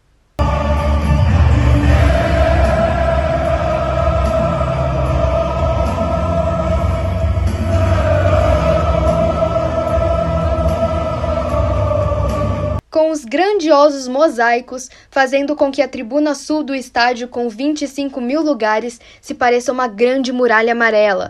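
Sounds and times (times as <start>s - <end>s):
football stadium crowd in Germany singing an anthem: 0.4s - 12.8s
speech: 13.3s - 21.2s.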